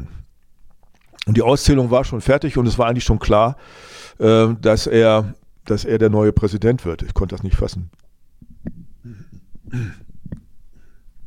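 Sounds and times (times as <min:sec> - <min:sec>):
speech: 0:01.3 - 0:10.0
loud raspy throat clearing: 0:09.0 - 0:10.1
short guttural grunts: 0:09.0 - 0:10.1
breathy sounds: 0:09.0 - 0:11.2.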